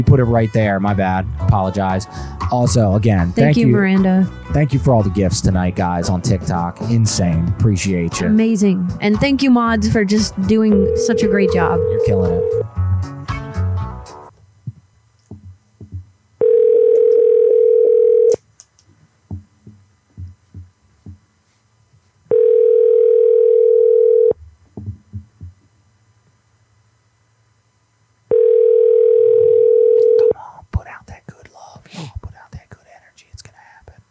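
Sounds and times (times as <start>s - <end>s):
speech: 0.0s - 12.7s
ringback tone of an outgoing phone call before voicemail: 10.7s - 12.7s, 16.4s - 18.4s, 22.3s - 24.4s, 28.3s - 30.3s.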